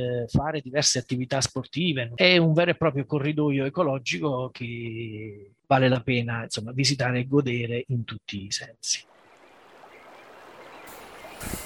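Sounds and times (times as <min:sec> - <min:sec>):
speech: 0:00.0 - 0:09.1
river water flowing: 0:09.1 - 0:11.6.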